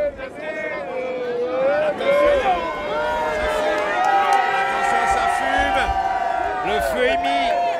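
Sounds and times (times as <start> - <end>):
large outdoor crowd of nearly a thousand people roaring and cheering at a bonfire: 0.0 - 7.7
people clapping: 3.3 - 7.7.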